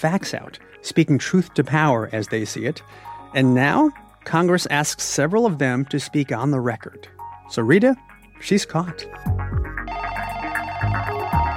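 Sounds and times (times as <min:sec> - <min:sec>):
speech: 0:00.0 - 0:09.5
telephone ringing with a bright electronic ringtone: 0:09.8 - 0:11.5.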